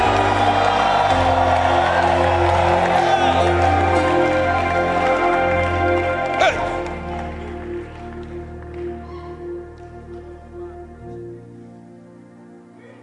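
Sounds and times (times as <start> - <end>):
large audience cheering and shouting: 0.0 - 7.6
audience clapping: 0.0 - 10.6.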